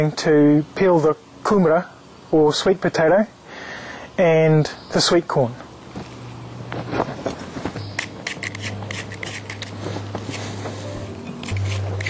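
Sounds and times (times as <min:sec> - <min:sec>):
speech: 0:00.0 - 0:03.4, 0:04.2 - 0:05.6
low steady hum: 0:00.0 - 0:12.0
utensil scraping seeds out of a pumpkin being prepared for stuffing: 0:06.9 - 0:12.0.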